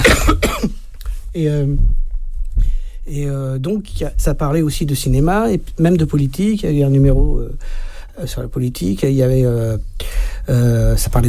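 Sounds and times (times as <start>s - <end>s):
man coughing: 0.0s - 0.8s
speech: 1.4s - 2.0s, 3.1s - 11.2s.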